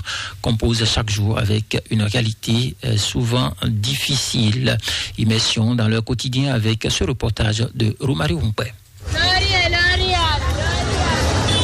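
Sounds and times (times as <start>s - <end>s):
speech: 0.4s - 8.8s
dense hubbub of many passers-by's voices at a roadside market: 9.0s - 11.6s
low rumble of passing motorbikes and buses beside a roadside market: 10.3s - 11.6s.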